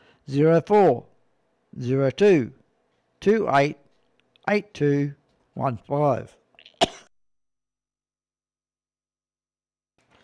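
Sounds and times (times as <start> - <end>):
speech: 0.3 - 1.1, 1.8 - 2.6, 3.2 - 3.8, 4.5 - 6.4
throat clearing: 6.6 - 7.1.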